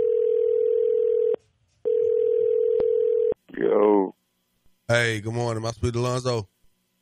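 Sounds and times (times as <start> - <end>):
phone line ringing tone on an outgoing call: 0.0 - 3.4
speech: 4.9 - 6.5.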